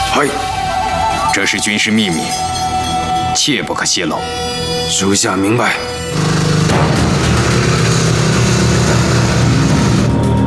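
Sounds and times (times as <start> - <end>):
speech: 0.1 - 0.6, 1.4 - 2.7, 3.4 - 7.0
motorcycle engine running: 6.1 - 10.3.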